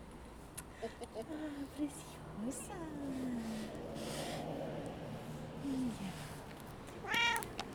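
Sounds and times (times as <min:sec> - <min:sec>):
speech: 0:00.8 - 0:04.5, 0:05.7 - 0:06.3
female cat meowing: 0:07.0 - 0:07.6.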